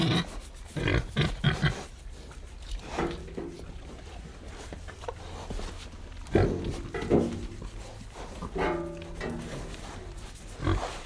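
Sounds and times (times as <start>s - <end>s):
Tamworth pig grunting: 0.0s - 1.9s, 6.3s - 11.0s
Tamworth pigs crunching, chewing and snuffling while eating: 0.0s - 11.0s.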